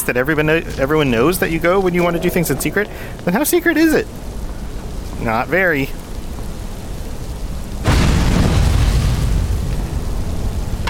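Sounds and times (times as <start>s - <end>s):
roaring fire in a video game: 0.0s - 10.8s
speech: 0.1s - 4.3s, 5.2s - 6.0s
fire igniting whoosh in a video game: 7.2s - 10.8s.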